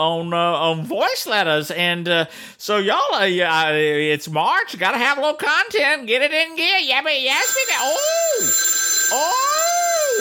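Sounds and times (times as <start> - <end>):
speech: 0.0 - 10.2
telephone ringing as a warbling electronic tone: 7.4 - 10.2.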